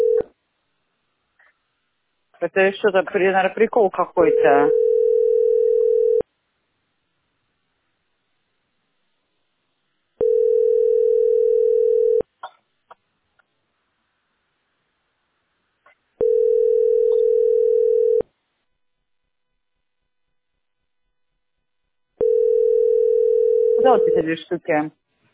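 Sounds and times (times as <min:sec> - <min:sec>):
person answering phone: 0:00.0 - 0:00.2, 0:04.2 - 0:06.2, 0:10.2 - 0:12.3, 0:16.2 - 0:18.2, 0:22.2 - 0:24.4
telephone ringback tone while calling a utility company: 0:00.0 - 0:00.2, 0:04.3 - 0:06.2, 0:10.2 - 0:12.3, 0:16.2 - 0:18.2, 0:22.2 - 0:24.2
speech: 0:02.4 - 0:04.8, 0:24.3 - 0:25.0.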